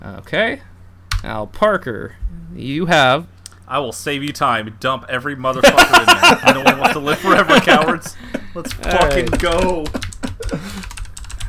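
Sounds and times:
speech: 0.0s - 10.7s
laughter: 5.6s - 10.8s
computer keyboard typing: 8.7s - 11.4s.

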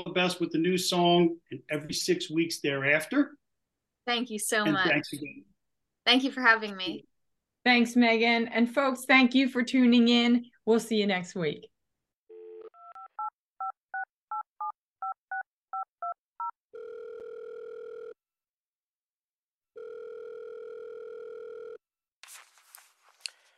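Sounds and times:
speech: 0.0s - 3.4s, 4.0s - 5.5s, 6.1s - 11.7s
phone line tone: 12.3s - 18.2s, 19.8s - 21.8s.

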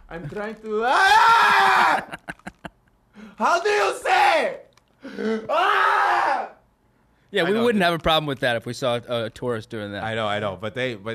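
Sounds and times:
speech: 0.1s - 2.4s, 3.4s - 6.5s, 7.3s - 11.1s
person screaming: 0.8s - 2.2s, 5.2s - 6.6s
laughter: 1.1s - 2.9s.

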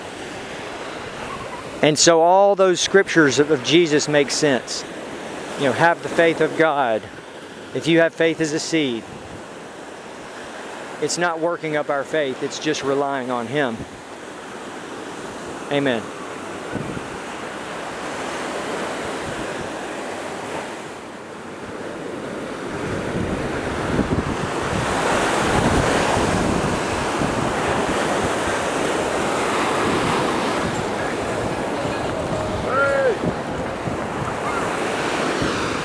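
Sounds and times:
ocean waves breaking on the shore: 0.0s - 35.8s
speech: 1.8s - 4.9s, 5.6s - 9.2s, 11.0s - 14.1s, 15.7s - 16.8s
steady wind buffeting the microphone: 9.0s - 9.6s, 16.7s - 17.4s, 19.0s - 19.9s, 22.6s - 35.8s.

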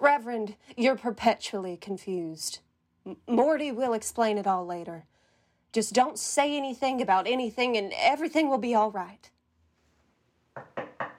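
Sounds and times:
speech: 0.2s - 5.1s, 5.7s - 9.3s
firm knocking on a wooden door: 10.6s - 11.1s.

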